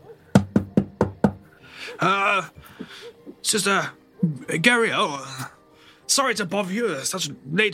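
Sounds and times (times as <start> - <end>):
firm knocking on a door: 0.3 - 1.4
speech: 1.9 - 5.5, 6.1 - 7.7.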